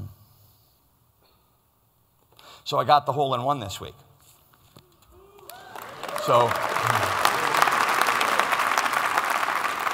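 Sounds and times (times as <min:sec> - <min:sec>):
speech: 0:02.6 - 0:04.1, 0:06.3 - 0:07.0
church congregation applauding during a sermon: 0:05.3 - 0:09.9.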